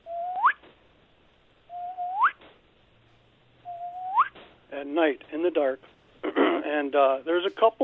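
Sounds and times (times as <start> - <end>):
person whistling an imitation of an unknown night bird call: 0.0 - 0.6, 1.7 - 2.4, 3.6 - 4.3
speech: 4.8 - 6.0, 6.6 - 7.8.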